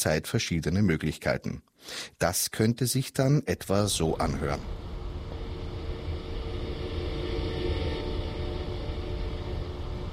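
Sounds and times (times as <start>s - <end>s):
speech: 0.0s - 4.9s
electric vehicle pedestrian warning sound with synthetic humming whir: 4.1s - 10.1s.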